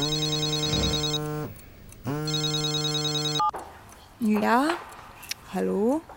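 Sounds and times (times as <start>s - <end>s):
telephone ringing with steady electronic tone: 0.0s - 3.5s
speech: 4.2s - 4.9s, 5.5s - 6.1s.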